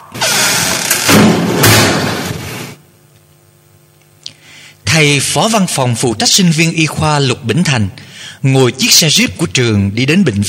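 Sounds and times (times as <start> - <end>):
anatomy lab door flung open with crashing noise: 0.2 - 2.7
speech: 5.0 - 10.4.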